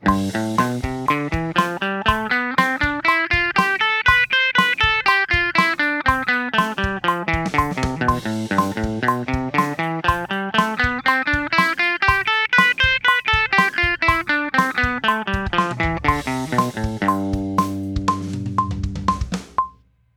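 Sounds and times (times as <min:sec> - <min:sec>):
A minor mixolydian eighth note pattern: 0:00.0 - 0:19.7.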